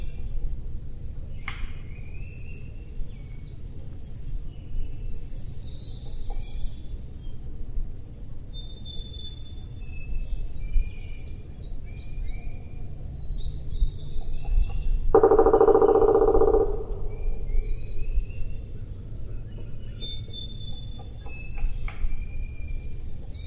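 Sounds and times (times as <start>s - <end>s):
thin high songs of other birds: 0.0s - 7.5s, 8.2s - 23.4s
low steady rumble: 0.0s - 23.4s
woodpecker drumming in Flat Rock: 14.4s - 17.6s.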